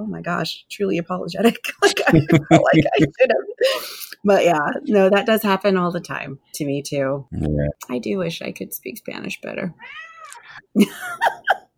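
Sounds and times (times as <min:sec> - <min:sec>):
speech: 0:00.0 - 0:11.6
laughter: 0:01.8 - 0:03.6
cat meowing: 0:09.8 - 0:10.6.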